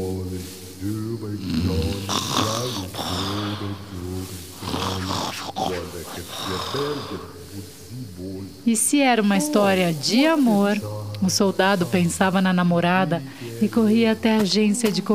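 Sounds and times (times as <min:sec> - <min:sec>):
man making exaggerated snoring sounds: 0:01.2 - 0:08.4
speech: 0:08.6 - 0:15.1.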